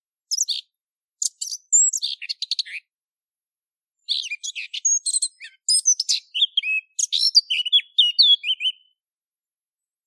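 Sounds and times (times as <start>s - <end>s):
Eurasian blackcap song: 0.2s - 2.9s, 4.0s - 9.0s.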